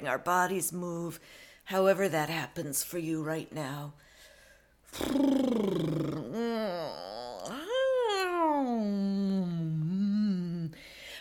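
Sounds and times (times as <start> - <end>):
speech: 0.0 - 4.1, 4.9 - 7.0
long voiced yawn during a stretch: 4.9 - 10.8.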